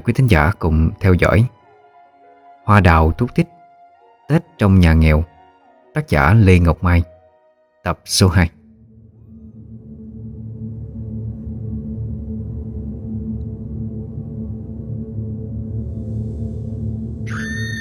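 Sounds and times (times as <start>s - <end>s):
speech: 0.0s - 1.6s, 2.7s - 3.6s, 4.3s - 5.3s, 6.0s - 7.1s, 7.8s - 8.6s
cold piercing high-pitched scream: 17.3s - 17.7s.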